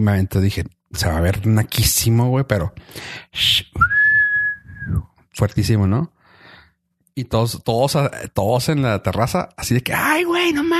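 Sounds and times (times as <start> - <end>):
speech: 0.0 - 4.0, 4.9 - 6.2, 7.2 - 10.7
loud piercing human whistle: 3.8 - 5.0.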